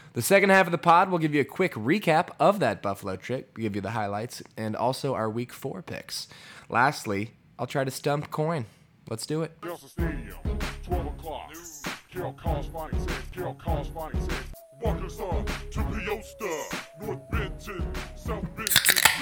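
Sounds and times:
speech: 0:00.2 - 0:19.2
beer cans cracked open: 0:18.5 - 0:19.2
hissing fizz of beer cans: 0:18.6 - 0:19.2.

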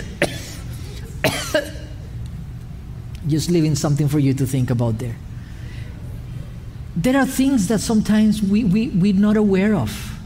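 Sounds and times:
person coughing: 0:00.0 - 0:02.0
faint low hum: 0:00.0 - 0:10.2
speech: 0:03.3 - 0:05.3, 0:07.0 - 0:10.1.

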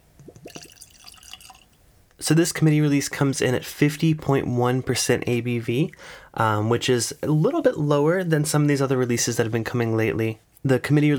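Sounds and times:
whisky glugging from a bottle into a glass: 0:00.3 - 0:01.9
speech: 0:02.2 - 0:11.1.

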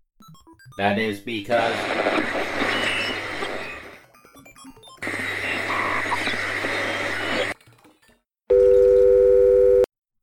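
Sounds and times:
harsh crackling static on a phone line: 0:00.3 - 0:07.7
speech: 0:00.6 - 0:02.6
steady electronic dial tone after a dropped phone call: 0:08.5 - 0:09.9.

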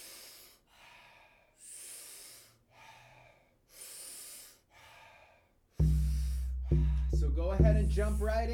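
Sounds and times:
person taking powerful rhythmic breaths in and soft exhales through the mouth: 0:00.0 - 0:07.2
speech: 0:07.8 - 0:08.5.

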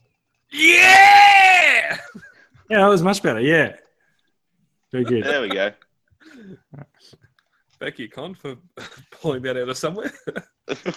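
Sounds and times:
loud sustained human yell with a strong bright voice: 0:00.5 - 0:02.2
speech: 0:02.7 - 0:03.8, 0:04.9 - 0:07.2, 0:07.8 - 0:10.9
laughter: 0:05.0 - 0:05.9, 0:09.9 - 0:10.9.

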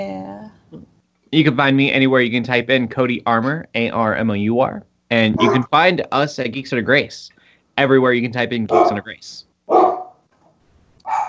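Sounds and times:
speech: 0:00.0 - 0:09.9
dog barking: 0:05.4 - 0:05.6, 0:08.7 - 0:09.0, 0:09.7 - 0:10.2, 0:11.1 - 0:11.2.

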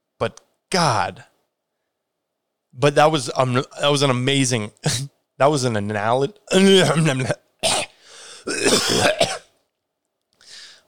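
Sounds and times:
speech: 0:00.2 - 0:01.3, 0:02.8 - 0:07.8, 0:08.7 - 0:09.2
person coughing: 0:06.5 - 0:09.5
soft breathy sound: 0:10.4 - 0:10.8.

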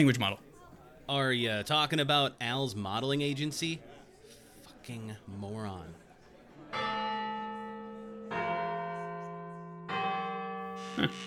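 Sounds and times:
speech: 0:00.0 - 0:00.5, 0:01.1 - 0:03.9, 0:04.8 - 0:06.0, 0:11.0 - 0:11.2
church bell tolling: 0:06.7 - 0:11.2.

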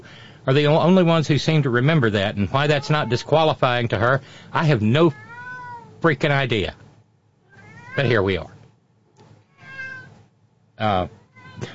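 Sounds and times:
speech: 0:00.4 - 0:05.2, 0:06.0 - 0:06.8, 0:08.0 - 0:08.6, 0:10.8 - 0:11.7
cat meowing: 0:02.5 - 0:03.6, 0:05.0 - 0:06.0, 0:07.5 - 0:08.4, 0:09.4 - 0:10.2, 0:11.1 - 0:11.7.

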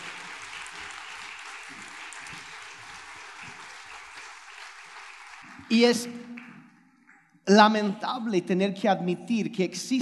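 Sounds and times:
audience applause: 0:00.0 - 0:06.6
speech: 0:05.7 - 0:06.2, 0:07.5 - 0:09.9.

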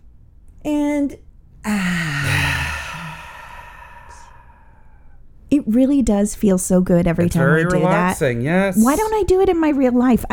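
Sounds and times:
speech: 0:00.6 - 0:02.1, 0:05.7 - 0:10.3
deep breath in during a relaxation exercise: 0:01.7 - 0:05.2.

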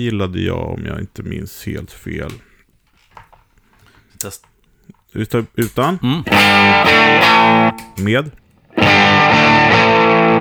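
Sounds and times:
speech: 0:00.0 - 0:02.5, 0:04.2 - 0:09.7
thick fuzzy overdriven guitar tone from a fuzzy overdrive effect: 0:06.3 - 0:10.3.

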